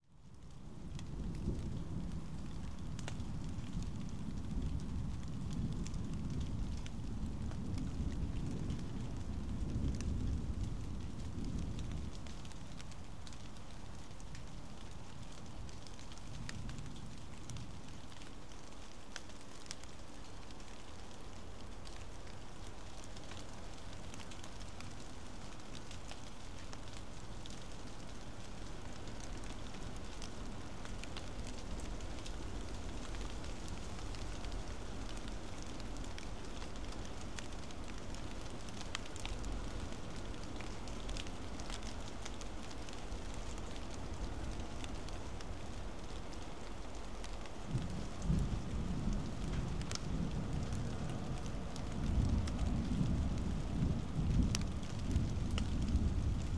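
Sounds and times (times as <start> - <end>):
rain on a suburban fence: 0.0 - 56.5.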